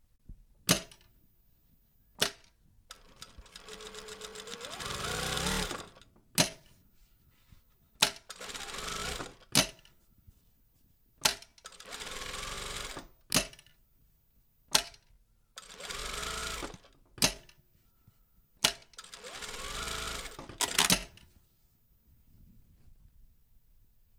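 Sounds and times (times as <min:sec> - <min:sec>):
sewing machine clicks: 0:02.2 - 0:06.7, 0:08.0 - 0:09.9, 0:11.2 - 0:13.7, 0:15.6 - 0:17.6, 0:18.6 - 0:21.3
lockstitch sewing machine sewing: 0:02.9 - 0:06.0, 0:08.3 - 0:09.8, 0:11.7 - 0:13.1, 0:15.6 - 0:17.0, 0:18.6 - 0:21.2.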